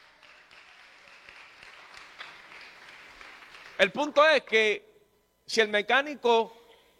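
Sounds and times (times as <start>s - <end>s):
crowd applauding: 0.0s - 4.2s
speech: 3.8s - 4.9s, 5.5s - 6.6s.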